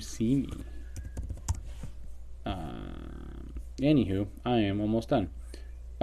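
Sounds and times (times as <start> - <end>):
speech: 0.0 - 0.8, 3.8 - 5.4
steady hum: 0.0 - 6.0
keyboard typing clicks during a Zoom class: 0.5 - 1.6.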